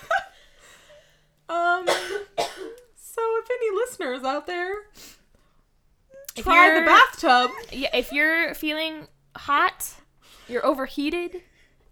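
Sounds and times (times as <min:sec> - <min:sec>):
harsh coughs: 0:01.9 - 0:02.8
speech: 0:04.0 - 0:05.0, 0:06.4 - 0:11.5.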